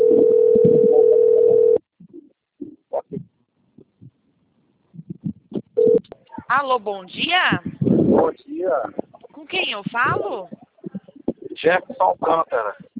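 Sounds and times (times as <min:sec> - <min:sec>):
long steady ringback tone on an outgoing phone call: 0:00.0 - 0:01.8, 0:05.8 - 0:06.0
speech: 0:06.5 - 0:10.6, 0:11.6 - 0:12.8.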